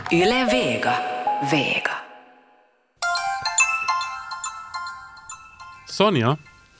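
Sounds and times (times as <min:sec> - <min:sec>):
speech: 0:00.1 - 0:02.0, 0:06.0 - 0:06.5
mobile phone ringtone with a bright repeating electronic melody: 0:03.0 - 0:06.7.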